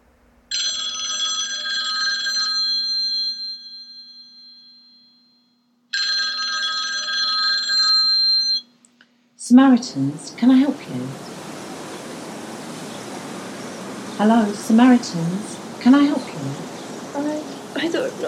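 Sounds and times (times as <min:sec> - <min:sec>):
telephone ringing through the line on a call from a phone box: 0:00.5 - 0:08.7
speech: 0:09.5 - 0:11.4, 0:14.2 - 0:18.2.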